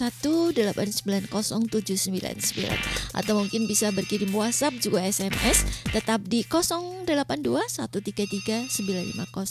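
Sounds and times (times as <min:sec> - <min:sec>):
speech: 0:00.0 - 0:09.4
telephone ringing on a call-in line: 0:02.6 - 0:06.0, 0:08.0 - 0:09.4.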